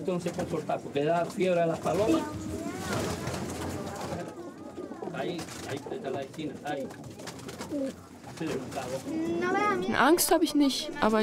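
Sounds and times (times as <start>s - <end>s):
speech: 0.0s - 3.4s, 5.2s - 11.2s
pigeons cooing: 1.9s - 9.6s.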